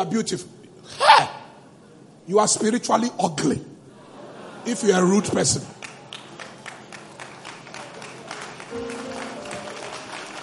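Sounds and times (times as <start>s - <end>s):
speech: 0.0s - 1.4s, 2.3s - 3.7s, 4.6s - 5.8s
crowd applauding: 5.8s - 10.4s.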